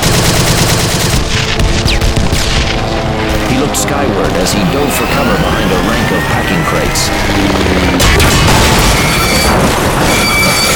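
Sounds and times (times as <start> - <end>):
machine gun fire: 0.0 - 2.8
speech: 3.7 - 10.7.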